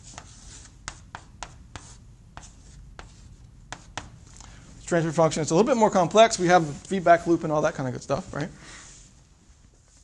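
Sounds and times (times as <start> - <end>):
writing on a board during an engineering lecture: 0.0 - 4.2
speech: 4.9 - 8.8.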